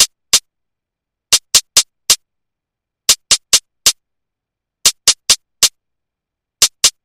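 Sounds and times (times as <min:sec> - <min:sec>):
ambient house hi-hats: 0:00.0 - 0:00.5, 0:01.3 - 0:02.2, 0:03.1 - 0:04.0, 0:04.8 - 0:05.8, 0:06.6 - 0:07.0.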